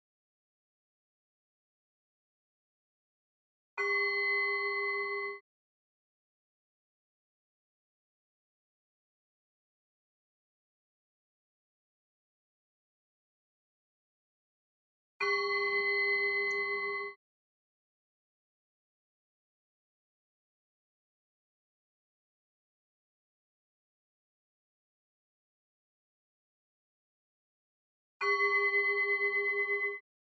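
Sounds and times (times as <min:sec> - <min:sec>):
meditation bell struck to mark a relaxation session: 0:03.8 - 0:05.4, 0:15.2 - 0:17.2, 0:28.2 - 0:30.0.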